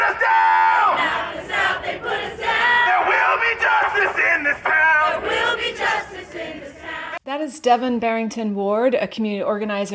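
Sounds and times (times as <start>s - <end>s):
large crowd singing a rhythmic protest chant outdoors: 0.0s - 7.2s
speech: 7.4s - 9.9s.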